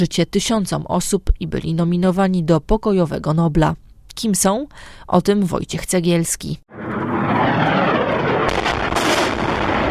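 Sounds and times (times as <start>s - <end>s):
speech: 0.0s - 6.7s
heavy blasts of bombs dropped from planes: 6.7s - 9.8s
military fighter jets roaring in Syria: 6.7s - 9.8s.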